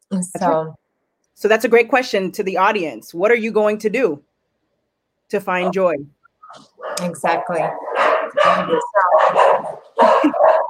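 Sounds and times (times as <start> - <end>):
speech: 0.1 - 0.8, 1.4 - 4.3, 5.3 - 10.6
dogs barking excitedly: 6.4 - 10.6
laughter: 9.8 - 10.6.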